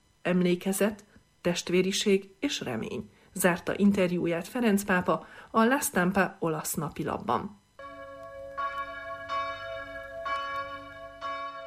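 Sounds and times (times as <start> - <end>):
speech: 0.2 - 7.6
church bells ringing in a peal: 7.8 - 11.6.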